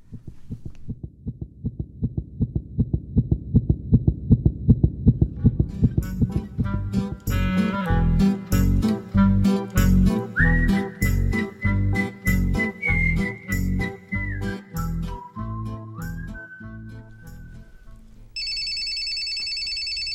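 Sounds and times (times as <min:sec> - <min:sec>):
fetal heartbeat heard with an ear against the mother's belly: 0:00.0 - 0:07.3
soft music with a rising melodic tone: 0:05.4 - 0:18.4.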